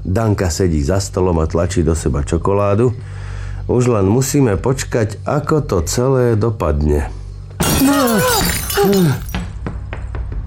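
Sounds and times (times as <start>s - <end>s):
speech: 0.1s - 7.2s, 7.8s - 9.2s
falling glass shards clinking and tinkling: 7.6s - 9.4s
window glass shattering from a football: 7.6s - 9.4s.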